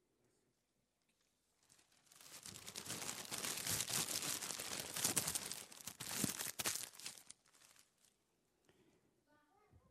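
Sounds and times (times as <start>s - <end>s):
sheet of paper being crumpled: 1.6s - 8.2s
child's voice: 9.2s - 9.8s.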